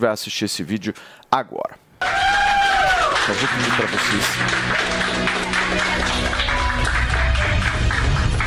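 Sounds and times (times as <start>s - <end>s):
speech: 0.0s - 2.2s, 3.2s - 6.4s
applause from a group of people indoors: 2.0s - 8.4s.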